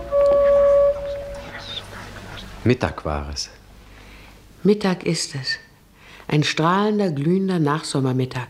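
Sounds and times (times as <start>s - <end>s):
sustained vehicle horn blast: 0.0s - 1.5s
speech: 2.6s - 3.6s, 4.6s - 5.7s, 6.3s - 8.4s.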